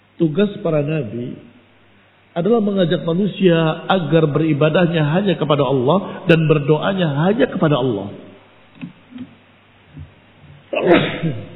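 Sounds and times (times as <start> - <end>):
speech: 0.2 - 1.5, 2.4 - 8.2, 10.8 - 11.5
quiet breathing: 6.0 - 6.3
person sneezing: 10.0 - 11.5.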